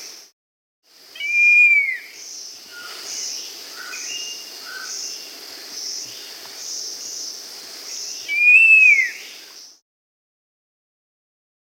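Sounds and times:
high insect buzz in South America: 0.9 - 9.8
scaled fruiteater giving a long whistle in South America: 1.2 - 2.9, 8.2 - 9.3.

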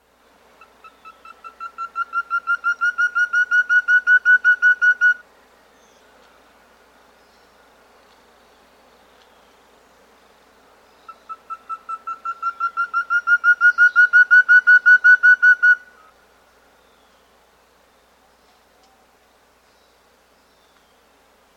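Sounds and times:
Black-headed antthrush call in South America: 0.6 - 5.2, 11.1 - 16.1.

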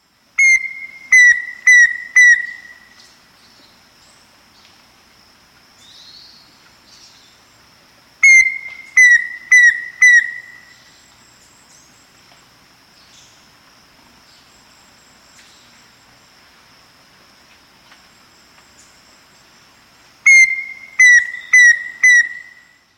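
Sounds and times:
Black-faced antthrush calling in South America: 0.4 - 3.1, 8.2 - 11.0, 20.2 - 22.8.

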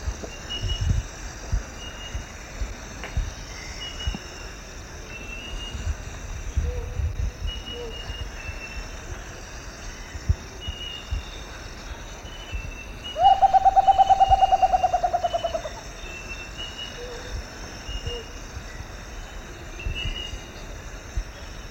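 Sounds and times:
insects chirping and buzzing: 0.0 - 21.7
rufous potoo soft descending hoots in South American eastern lowlands: 13.2 - 15.8.

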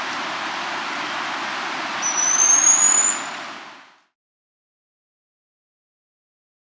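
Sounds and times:
steady hiss: 0.0 - 4.0
Black-streaked puffbird high rising whistle in South America: 2.0 - 3.5.

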